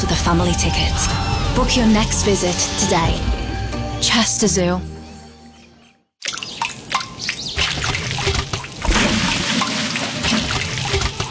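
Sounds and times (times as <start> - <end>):
speech: 0.3 - 3.4, 4.0 - 4.9
water dripping: 6.2 - 11.2.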